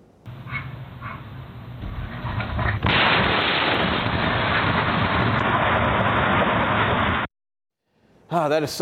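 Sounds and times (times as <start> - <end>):
faint outdoor noise in a neighborhood outside Pittsburgh, Pennsylvania: 0.0 - 3.1, 7.8 - 8.8
dog barking: 0.5 - 1.3
massive house explosion booming in a neighborhood outside Pittsburgh, Pennsylvania: 1.8 - 7.3
speech: 8.3 - 8.8.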